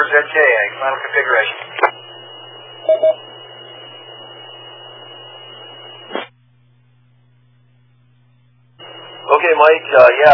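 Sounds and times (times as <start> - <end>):
radio static while cables are wiggled: 0.0 - 6.3, 8.8 - 10.3
speech: 0.1 - 2.1, 2.9 - 3.3, 9.4 - 10.3
quick electronic beeps: 2.0 - 6.1.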